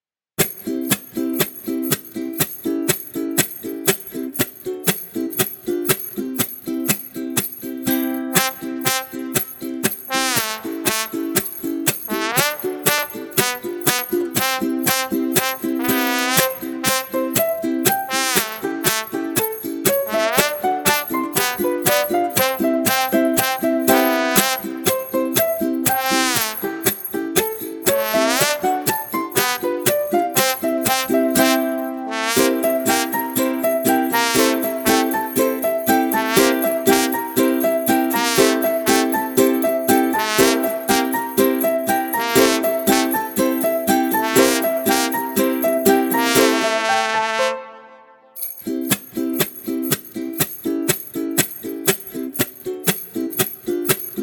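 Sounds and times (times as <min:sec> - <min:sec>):
ukulele playing happily: 0:00.4 - 0:54.2
trombone playing happily: 0:08.2 - 0:25.2, 0:25.9 - 0:27.1, 0:27.9 - 0:48.4.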